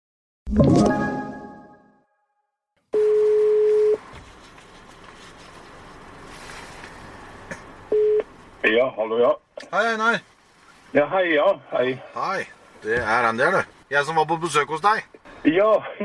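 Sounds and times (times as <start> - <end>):
speech: 0.5 - 1.0, 8.8 - 10.3, 10.9 - 16.0
outgoing phone call ringback tone: 3.0 - 4.0.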